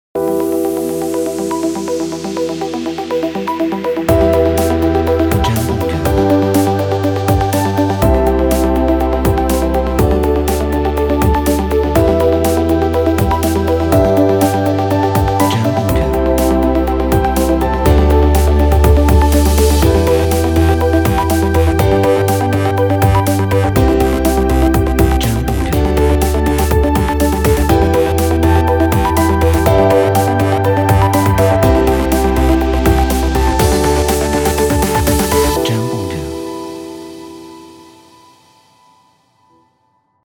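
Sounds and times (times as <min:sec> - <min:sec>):
inspirational corporate music: 0:00.2 - 0:39.0.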